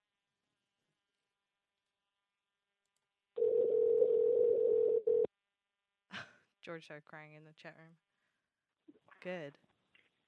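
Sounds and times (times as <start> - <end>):
electronic phone call ringing tone: 3.4 - 5.3
speech: 6.6 - 8.1, 9.2 - 9.7.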